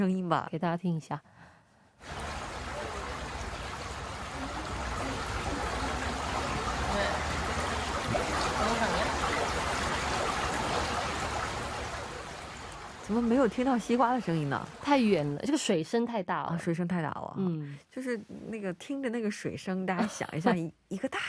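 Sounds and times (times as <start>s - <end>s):
people talking: 0.0s - 1.2s, 4.3s - 7.4s, 8.1s - 9.3s, 13.1s - 21.2s
mountain stream rushing: 2.0s - 15.3s.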